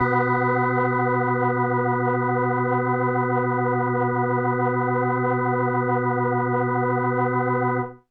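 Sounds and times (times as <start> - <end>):
organ note B1: 0.0 - 7.9.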